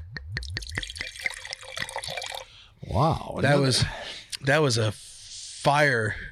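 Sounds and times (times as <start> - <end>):
drink glugging out of a bottle into a glass: 0.6 - 2.5
speech: 3.0 - 6.3.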